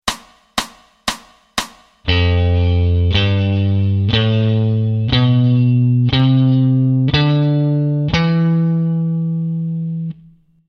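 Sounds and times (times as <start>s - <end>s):
guitar sixth string playing in G Mixolydian: 2.1s - 10.6s.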